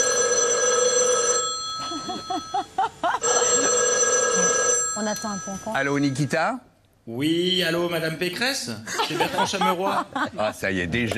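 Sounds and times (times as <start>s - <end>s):
telephone bell ringing: 0.0s - 6.4s
steady hum: 0.0s - 11.1s
speech: 5.0s - 11.1s
laughter: 8.8s - 10.8s.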